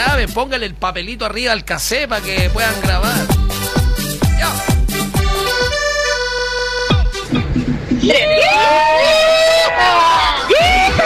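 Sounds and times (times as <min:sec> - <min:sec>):
sustained musical chords punctuated by sharp hits: 0:00.0 - 0:00.6, 0:02.1 - 0:08.2
speech: 0:00.2 - 0:03.4, 0:04.4 - 0:04.7, 0:08.0 - 0:10.0
several voices shouting in celebration: 0:08.1 - 0:11.0.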